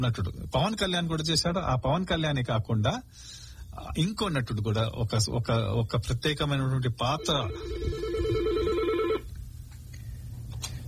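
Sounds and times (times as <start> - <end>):
speech: 0.0 - 8.3
telephone ringing with an incoming call on a radio phone-in line: 7.1 - 9.3.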